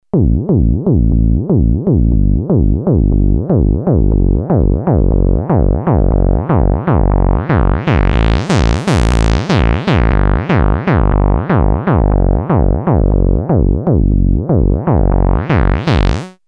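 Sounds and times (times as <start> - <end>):
Moog Minitaur analog monophonic synthesizer bass: 0.0 - 16.4.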